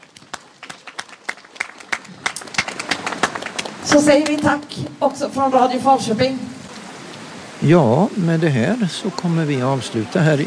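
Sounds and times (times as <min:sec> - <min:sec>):
small outdoor audience applauding candidates: 0:00.0 - 0:04.7
speech: 0:03.9 - 0:06.6, 0:07.6 - 0:10.4.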